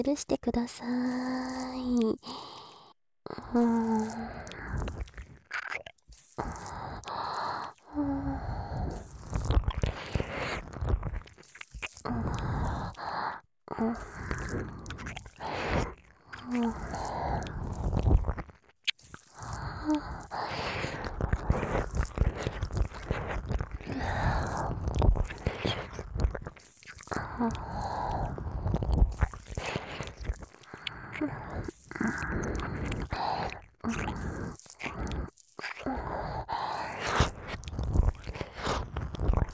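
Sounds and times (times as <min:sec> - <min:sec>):
speech: 0:00.0 - 0:02.6, 0:03.3 - 0:05.0, 0:27.4 - 0:27.6
wet ASMR ear-licking and mouth sounds: 0:01.1 - 0:39.5.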